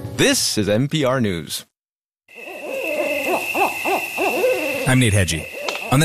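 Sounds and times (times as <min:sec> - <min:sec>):
speech: 0:00.2 - 0:01.7, 0:04.9 - 0:06.0
endangered owl hooting: 0:02.3 - 0:06.0.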